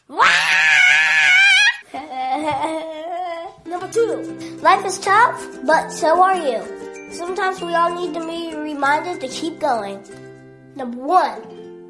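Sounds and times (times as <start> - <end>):
person screaming shrill and strained: 0.0 - 1.8
speech: 3.9 - 10.2, 10.8 - 11.5.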